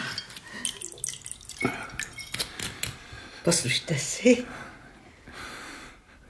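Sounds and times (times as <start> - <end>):
glass clinks: 0.1 - 2.7
liqueur poured into a glass: 0.2 - 2.6
speech: 3.5 - 4.7.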